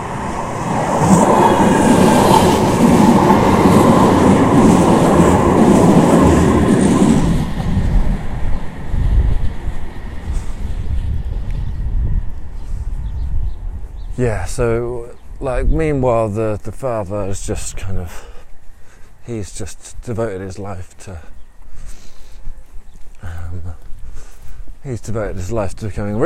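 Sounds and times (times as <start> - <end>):
tram rolling past with wheels rumbling on rails: 0.0 - 18.1
speech: 14.2 - 18.3, 19.2 - 21.3, 23.2 - 23.8, 24.8 - 26.2.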